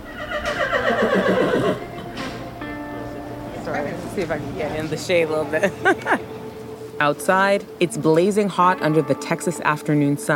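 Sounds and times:
horse whinnying at a rodeo arena in Texas: 0:00.0 - 0:02.3
speech: 0:00.9 - 0:01.9, 0:03.9 - 0:06.4, 0:07.0 - 0:10.3
laughter: 0:05.5 - 0:06.4.

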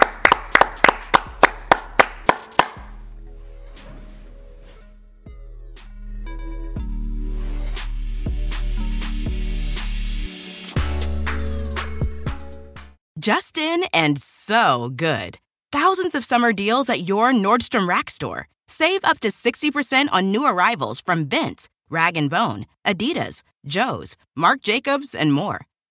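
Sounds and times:
hands clapping: 0:00.0 - 0:03.0
music with sporadic sharp hits: 0:00.2 - 0:13.0
speech: 0:13.2 - 0:25.7.

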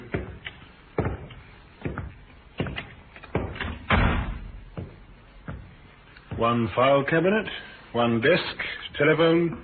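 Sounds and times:
heavy thuds: 0:00.0 - 0:06.6
unlocked business door being opened by a sergeant: 0:02.6 - 0:04.6
speech: 0:06.4 - 0:09.6.

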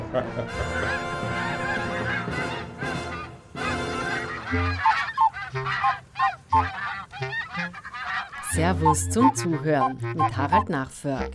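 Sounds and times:
speech: 0:00.1 - 0:01.6, 0:08.6 - 0:11.3
flock of geese honking and cackling: 0:00.6 - 0:10.8.

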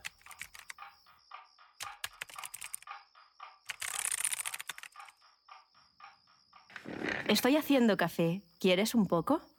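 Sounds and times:
rapid typing on a computer keyboard: 0:00.0 - 0:00.8, 0:01.8 - 0:02.9, 0:03.6 - 0:05.2
speech: 0:06.9 - 0:09.5.

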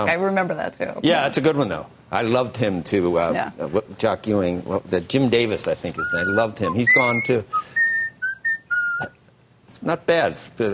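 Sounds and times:
speech: 0:00.0 - 0:07.8, 0:09.8 - 0:10.7
person whistling a tune: 0:06.0 - 0:09.2.

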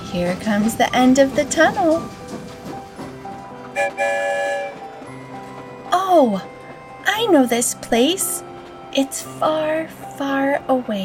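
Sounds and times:
train rumbling with rhythmic clatter: 0:00.0 - 0:11.0
speech: 0:00.1 - 0:02.2, 0:03.8 - 0:04.8, 0:05.9 - 0:06.5, 0:07.2 - 0:11.0
train whistle toot and blast: 0:03.7 - 0:05.1.

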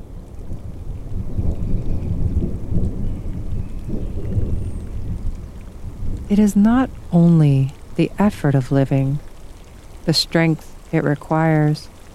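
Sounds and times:
rain: 0:00.0 - 0:12.1
rolling thunder: 0:00.4 - 0:07.1
speech: 0:06.3 - 0:09.2, 0:10.1 - 0:11.9.

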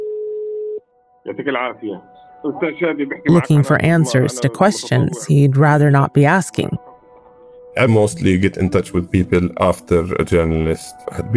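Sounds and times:
steady electronic telephone tone: 0:00.0 - 0:00.8
speech: 0:01.2 - 0:06.9, 0:07.8 - 0:11.3.

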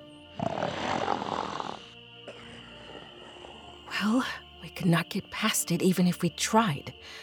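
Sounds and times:
huge Chenoo creature snoring asleep before a wigwam entrance at night: 0:00.3 - 0:03.9
speech: 0:04.0 - 0:07.2.

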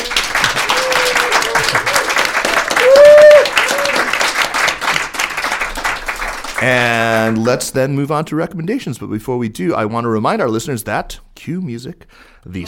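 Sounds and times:
crowd cheering: 0:00.0 - 0:05.2
audience applause at an event at the China Institute: 0:00.0 - 0:07.6
speech: 0:06.6 - 0:12.6.

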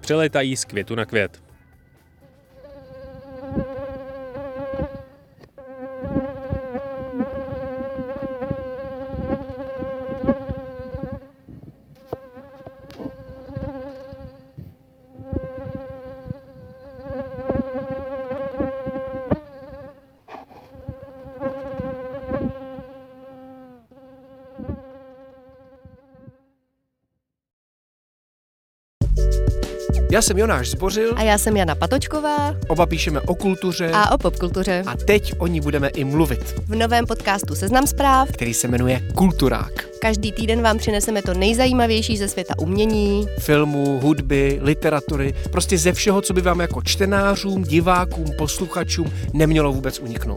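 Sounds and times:
speech: 0:00.1 - 0:01.5, 0:30.2 - 0:50.3
mosquito buzzing: 0:02.1 - 0:26.7, 0:35.7 - 0:50.3.

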